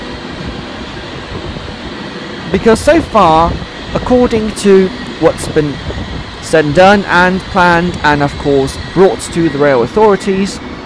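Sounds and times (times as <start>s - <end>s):
high-speed train rushing past: 0.0s - 10.8s
speech: 2.5s - 10.8s.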